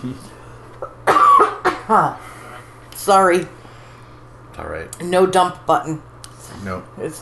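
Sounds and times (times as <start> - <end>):
speech: 0.0 - 1.0, 1.9 - 2.3, 3.0 - 3.6, 4.6 - 7.2
person coughing harshly and wetly: 1.0 - 2.0.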